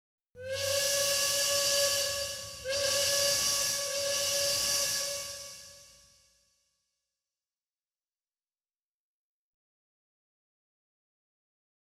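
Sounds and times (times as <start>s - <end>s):
train whistle: 0.4s - 6.4s.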